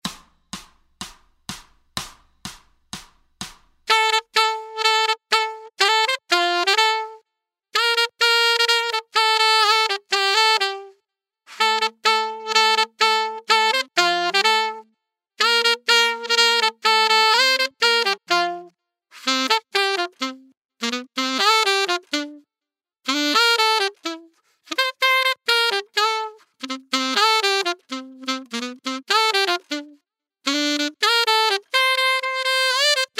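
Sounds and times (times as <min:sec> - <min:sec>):
solo saxophone playing a Christmas tune: 0:03.9 - 0:33.1.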